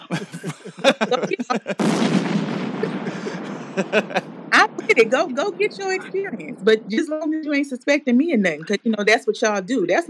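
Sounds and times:
people chuckling: 0.0 - 2.0, 2.6 - 4.2, 4.8 - 6.4, 8.5 - 9.2
speech: 0.1 - 0.5, 5.0 - 10.0
bomb explosion sound effect: 0.2 - 7.6.

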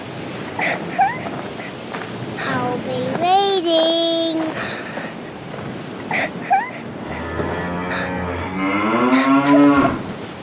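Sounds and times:
faint watery background: 0.0 - 10.4
speech: 0.6 - 1.1, 2.8 - 3.9
cow mooing in distress in a strained bellow: 6.8 - 10.1.

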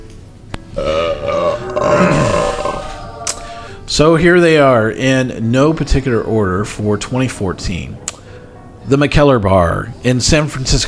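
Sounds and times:
long rumbling belch: 0.8 - 3.3
speech: 4.0 - 8.0, 8.9 - 10.8.

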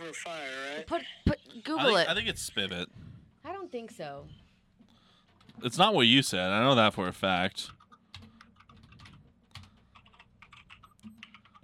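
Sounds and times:
speech: 0.1 - 3.0, 3.7 - 4.4, 5.6 - 7.8
typing on a computer keyboard: 7.7 - 11.6.

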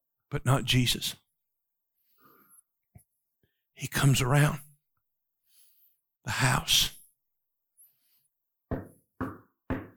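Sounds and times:
speech: 0.3 - 1.2, 3.8 - 4.7, 6.2 - 7.0
loud resonant knocks on a door: 8.7 - 9.9.

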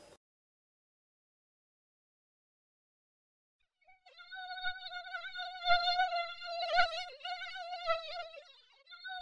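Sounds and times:
tiny fly buzzing around a fruit basket beside a bed: 3.9 - 9.2.

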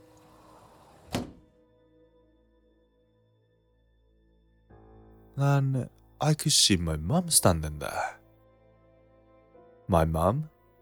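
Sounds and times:
door latch releasing or door swinging open: 1.1 - 1.4
speech: 5.4 - 8.2, 9.9 - 10.5.

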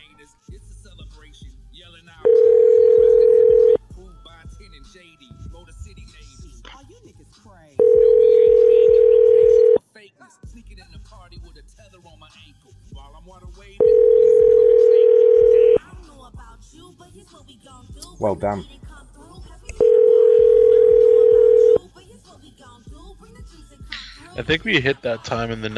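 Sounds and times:
unanswered telephone call ringback tones: 2.2 - 3.8, 7.8 - 9.8, 13.8 - 15.8, 19.8 - 21.8
speech: 18.3 - 18.8, 24.4 - 25.7.

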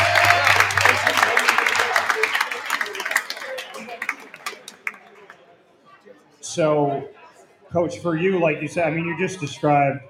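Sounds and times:
small group clapping for a school coach: 0.0 - 5.5
speech: 6.6 - 10.0.

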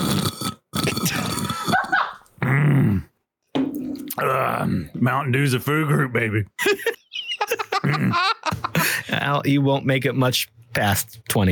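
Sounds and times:
person mimicking a dog with a longer growling yowl: 0.9 - 3.1, 4.2 - 4.9
speech: 5.0 - 6.9, 7.8 - 8.3, 9.1 - 11.4
laughter: 6.6 - 9.2.

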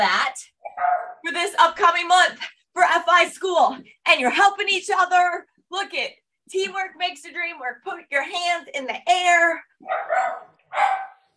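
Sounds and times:
speech: 0.0 - 0.2, 1.6 - 11.1
dog barking: 0.7 - 1.3, 9.8 - 11.3.

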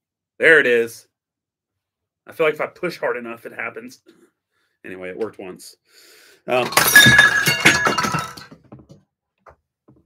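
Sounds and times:
speech: 0.4 - 1.1, 2.3 - 7.5
glass Oreo shattering: 6.5 - 8.6
glass shards tinkling: 6.7 - 8.5.

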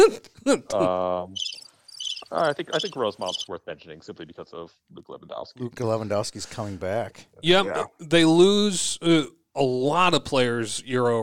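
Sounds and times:
speech: 0.0 - 1.6, 2.3 - 11.2
crickets chirping sound effect played from a button: 1.4 - 3.5
person humming: 7.5 - 7.9.

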